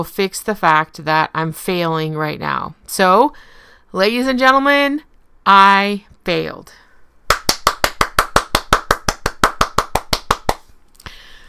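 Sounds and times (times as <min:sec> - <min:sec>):
speech: 0:00.0 - 0:06.8
person clapping alone: 0:07.3 - 0:10.7.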